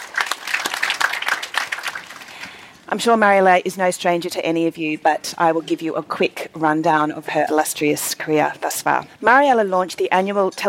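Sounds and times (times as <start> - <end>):
small audience applauding: 0.0 - 2.6
speech: 2.9 - 10.6.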